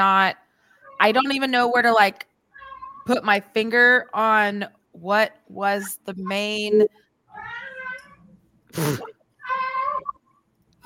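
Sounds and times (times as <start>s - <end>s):
speech: 0.0s - 0.4s, 1.0s - 2.3s, 3.0s - 7.6s, 8.7s - 9.2s
male pet cat meowing: 2.6s - 3.1s, 7.3s - 8.3s, 9.4s - 10.2s.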